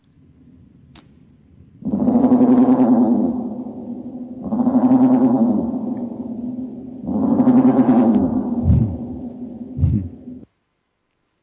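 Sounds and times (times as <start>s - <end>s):
raven croaks played at slowed speed with reverb: 0.2s - 10.4s
short low thuds: 1.9s - 10.4s.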